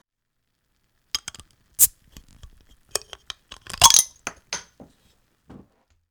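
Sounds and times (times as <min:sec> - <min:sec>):
beer trickling pour: 0:01.2 - 0:04.8
beer bottle clinking and rattling taken from a backpack: 0:01.2 - 0:04.9
light glassy taps: 0:01.2 - 0:04.9.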